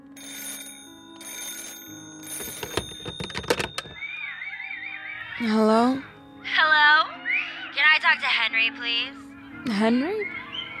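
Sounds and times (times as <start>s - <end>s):
old-style telephone bell ringing: 0.0s - 5.4s
telephone receiver picked up with clattering handling sounds: 2.2s - 4.0s
speech: 5.4s - 6.1s, 8.1s - 10.4s.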